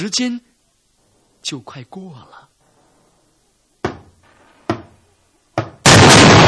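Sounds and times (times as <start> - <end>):
speech: 0.0 - 0.5, 1.4 - 2.5
heavy slow knocks on a door: 3.8 - 4.1.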